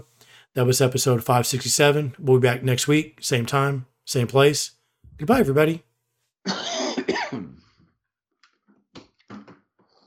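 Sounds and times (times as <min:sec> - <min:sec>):
speech: 0:00.5 - 0:06.6
person coughing: 0:06.5 - 0:07.8
throat clearing: 0:06.5 - 0:07.8.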